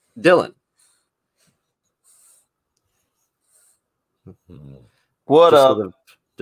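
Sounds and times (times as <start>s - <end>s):
speech: 0.2s - 0.6s, 4.5s - 6.4s
dog breathing heavily: 0.7s - 3.9s.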